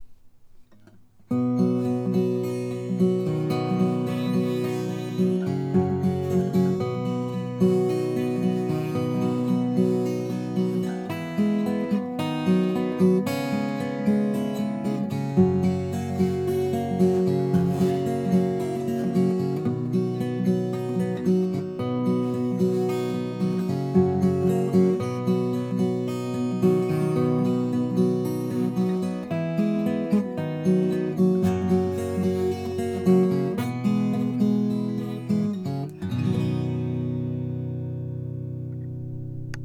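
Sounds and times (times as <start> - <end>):
guitar pick: 0.0 - 39.6.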